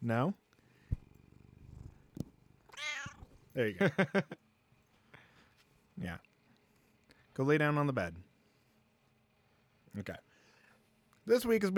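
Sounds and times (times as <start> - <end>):
speech: 0.0 - 0.4, 3.6 - 4.4, 6.0 - 6.3, 7.4 - 8.3, 10.0 - 10.3, 11.2 - 11.7
cat purring: 0.8 - 3.6.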